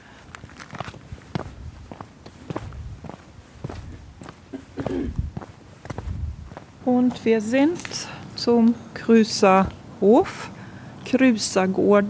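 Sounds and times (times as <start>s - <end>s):
faint outdoor ambience: 0.0s - 12.0s
footsteps walking across paving stones: 0.1s - 8.7s
speech: 6.9s - 12.0s.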